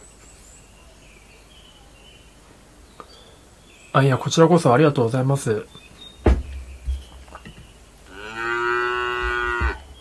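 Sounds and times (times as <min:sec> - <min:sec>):
faint hiss: 0:00.0 - 0:09.9
speech: 0:04.0 - 0:05.8
soft knocks and thumps: 0:06.2 - 0:07.8, 0:09.2 - 0:09.9
cow mooing: 0:08.1 - 0:09.8.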